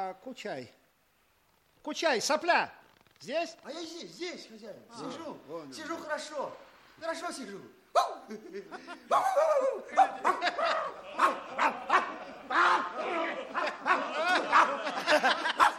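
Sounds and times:
speech: 0.1 - 0.8, 1.8 - 15.6
person imitating dog barking with bow-wow yelps and yaps: 7.9 - 8.3, 9.1 - 13.0
chuckling and laughter: 8.3 - 15.7.

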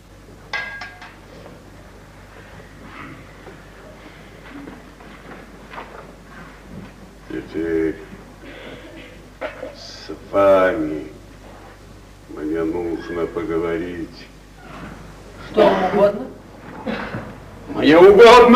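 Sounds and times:
low hum: 0.0 - 18.5
glass of water clinking while being handed over: 0.6 - 1.2
speech: 7.4 - 8.0, 10.3 - 11.1, 12.6 - 14.0, 17.8 - 18.5.

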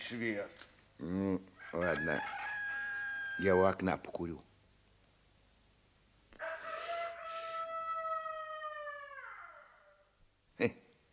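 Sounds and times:
speech: 0.1 - 2.4, 3.4 - 4.5, 10.6 - 10.8
rooster crowing: 1.6 - 3.8, 6.4 - 10.2.

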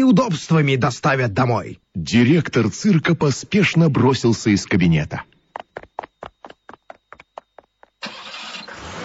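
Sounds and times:
speech: 0.0 - 5.3
car starter cranking: 8.0 - 9.0.

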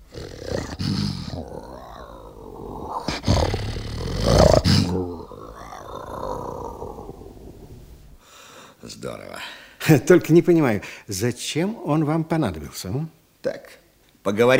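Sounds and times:
lion roaring in long rumbling bursts: 0.0 - 7.9
speech: 9.0 - 14.5.

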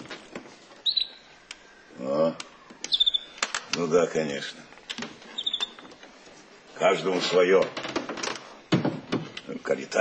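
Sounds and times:
canary giving short high whistling chirps: 0.8 - 1.3, 2.8 - 3.4, 5.3 - 5.8
speech: 3.8 - 4.7, 6.8 - 7.8, 9.7 - 9.9.

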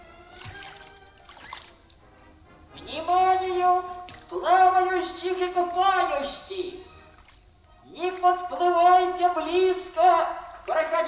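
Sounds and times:
water lapping and sloshing against a small rowing boat: 0.3 - 2.0, 3.0 - 4.7
speech: 5.0 - 6.9, 8.0 - 11.0.

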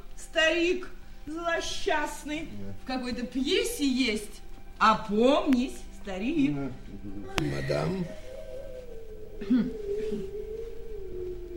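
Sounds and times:
speech: 0.3 - 8.2, 9.4 - 10.4
brief murmured sounds: 2.4 - 4.3, 5.1 - 11.5
dog howling: 7.0 - 11.5.

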